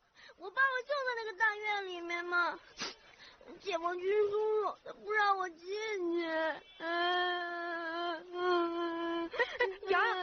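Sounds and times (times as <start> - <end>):
speech: 0.4 - 2.8, 3.4 - 10.2
young child crying: 6.8 - 10.2.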